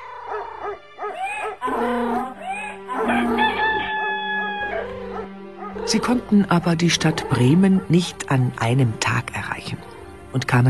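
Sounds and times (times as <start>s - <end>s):
rooster crowing loudly: 0.0s - 5.4s
speech: 5.9s - 10.6s.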